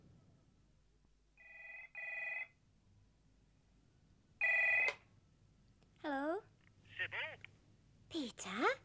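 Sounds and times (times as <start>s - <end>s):
telephone ringing in double-burst pattern: 1.4s - 2.6s, 4.4s - 5.0s
speech: 8.3s - 8.8s.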